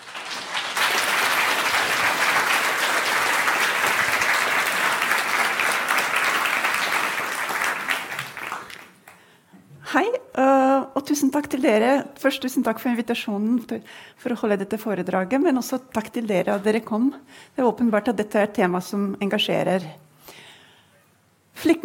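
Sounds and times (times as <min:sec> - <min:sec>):
large lecture audience applauding a speaker: 0:00.0 - 0:09.2
speech: 0:11.1 - 0:20.4, 0:21.6 - 0:21.8.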